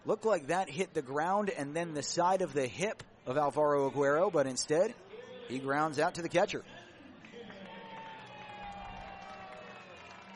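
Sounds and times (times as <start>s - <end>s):
speech: 0.0s - 6.8s
crowd clapping in ballpark stands: 7.2s - 10.3s.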